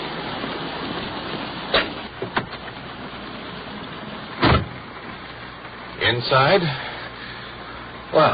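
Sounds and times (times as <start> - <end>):
steady rain: 0.0 - 8.3
police car door slamming: 1.7 - 2.6, 4.4 - 4.8
thumps and rustles of someone climbing into a police car: 1.7 - 2.9
speech: 6.1 - 6.9, 8.1 - 8.3.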